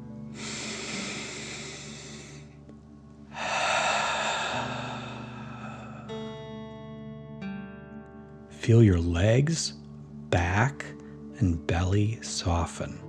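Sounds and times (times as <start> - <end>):
soft sustained musical tones: 0.0 - 13.0
deep breath in and out through the mouth: 0.3 - 2.5, 3.3 - 6.2
speech: 8.7 - 13.0.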